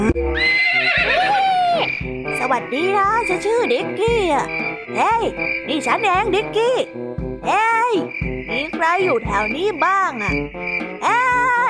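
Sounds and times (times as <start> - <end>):
horse neighing: 0.1 - 2.0
speech: 2.5 - 11.6.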